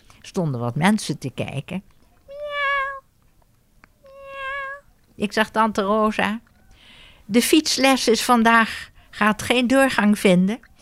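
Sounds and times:
speech: 0.3s - 1.9s, 5.2s - 6.5s, 7.3s - 10.7s
kitten meowing in a large pit in the Amsterdamse Bos, Amsterdam: 2.3s - 3.0s, 4.0s - 4.9s.

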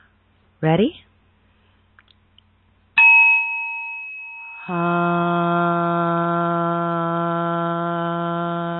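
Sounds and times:
speech: 0.6s - 1.1s, 4.7s - 5.5s
bright bell chime: 3.0s - 4.8s
group of voices chanting a long steady hum: 4.6s - 8.7s.

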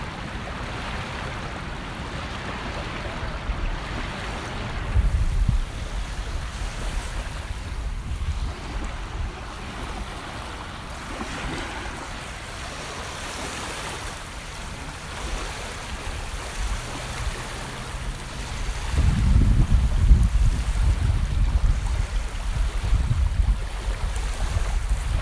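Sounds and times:
waves washing along a beach: 0.0s - 25.2s
wind rushing: 4.8s - 9.5s, 18.7s - 22.0s.

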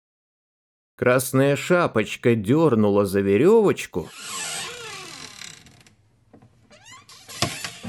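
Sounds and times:
speech: 1.0s - 4.4s
door hinges creaking open with a wavering squeal: 4.1s - 7.8s.

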